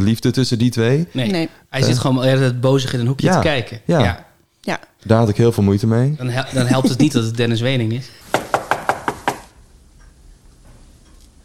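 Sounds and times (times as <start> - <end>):
speech: 0.0 - 8.2
laughter: 6.3 - 7.4
knocking on a door: 8.3 - 9.5.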